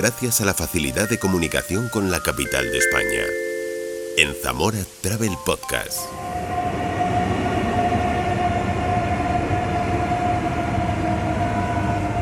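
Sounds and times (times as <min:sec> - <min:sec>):
speech: 0:00.0 - 0:03.5, 0:04.2 - 0:06.3
train idling at a station: 0:02.6 - 0:12.1.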